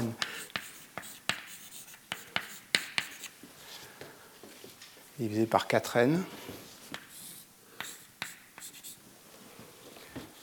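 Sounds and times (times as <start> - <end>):
handwriting scratching on a surface while working out a math expression: 0.2 - 3.3, 7.0 - 9.0
speech: 5.2 - 6.5.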